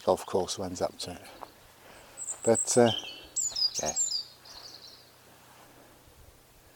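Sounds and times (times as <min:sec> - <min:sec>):
speech: 0:00.0 - 0:01.4, 0:02.4 - 0:03.1, 0:03.8 - 0:04.0
faint high bird chirps in a quiet churchyard: 0:01.4 - 0:05.2.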